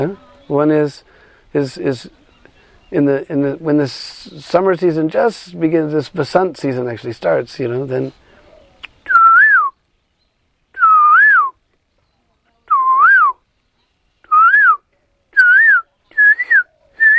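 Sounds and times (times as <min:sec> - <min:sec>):
speech: 0:00.0 - 0:02.2, 0:02.9 - 0:08.2
person whistling an imitation of a small all-black songbird's song: 0:08.8 - 0:09.8, 0:10.7 - 0:11.6, 0:12.7 - 0:13.4, 0:14.2 - 0:17.1.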